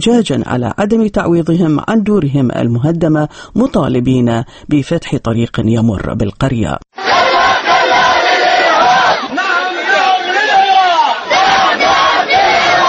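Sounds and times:
speech: 0.0 - 7.2
crowd of protesters chanting slogans at a demonstration: 7.0 - 12.8.

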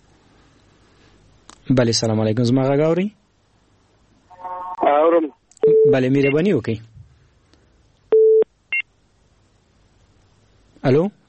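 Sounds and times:
speech: 1.7 - 3.2, 5.1 - 6.9, 10.8 - 11.2
telephone busy tone after a dropped phone call: 5.6 - 6.0, 8.2 - 8.4.

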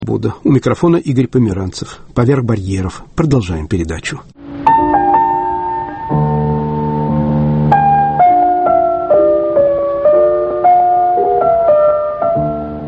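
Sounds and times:
speech: 0.1 - 4.3
Baroque concerto played on solo piano: 4.4 - 12.8.

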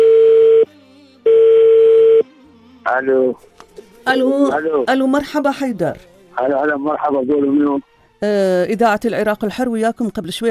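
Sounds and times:
telephone busy tone after a phone call was hung up: 0.0 - 0.7, 1.3 - 2.2
speech: 3.0 - 10.4.

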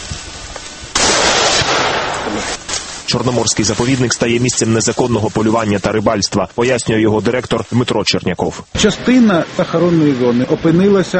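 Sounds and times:
gunshot-like blast: 0.9 - 2.6
speech: 2.4 - 11.1.

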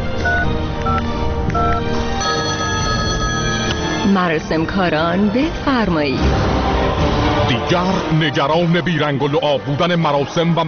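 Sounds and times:
dense continuous sound: 0.0 - 10.6
telephone keypad beeps as a phone number is dialed: 0.2 - 4.1
speech: 4.2 - 10.6.

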